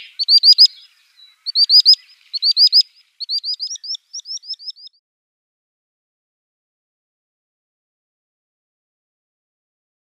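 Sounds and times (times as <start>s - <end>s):
Common sandpiper male display call: 0.0s - 5.0s.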